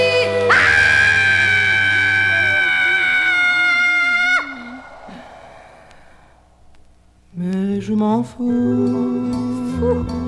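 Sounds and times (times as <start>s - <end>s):
loud sustained high-pitched human scream: 0.5s - 6.3s
speech: 7.9s - 10.2s.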